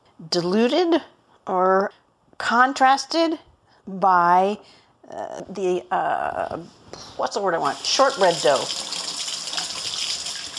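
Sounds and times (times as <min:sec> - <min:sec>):
speech: 0:00.2 - 0:09.0
water running from a tap while washing hands: 0:07.6 - 0:10.5.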